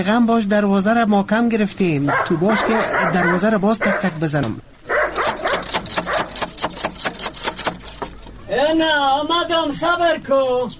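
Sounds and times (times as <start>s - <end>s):
speech: 0.0s - 4.7s, 8.5s - 10.7s
dog barking: 2.1s - 4.2s, 4.9s - 6.4s.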